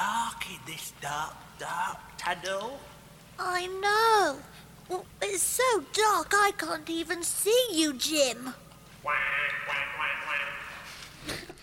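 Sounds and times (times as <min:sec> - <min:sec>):
speech: 0:00.7 - 0:10.6
duck quacking: 0:09.1 - 0:10.8.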